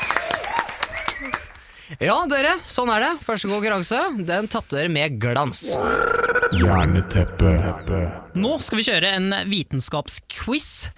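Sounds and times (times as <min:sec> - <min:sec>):
people whooping excitedly: 0:00.0 - 0:01.5
people clapping: 0:00.0 - 0:01.8
speech: 0:01.9 - 0:10.9.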